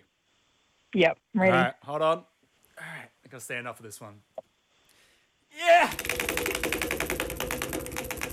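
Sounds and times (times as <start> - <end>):
speech: 0.9 - 2.3, 3.3 - 4.4, 5.5 - 6.8
prize wheel ticking against its pointer: 5.9 - 8.3.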